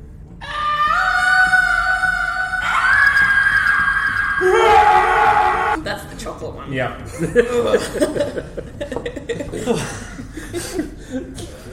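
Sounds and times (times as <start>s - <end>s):
person's voice imitating bellowing cries from inside a lair: 0.4s - 5.8s
speech: 6.6s - 8.8s, 9.6s - 10.0s
laughter: 7.1s - 11.7s.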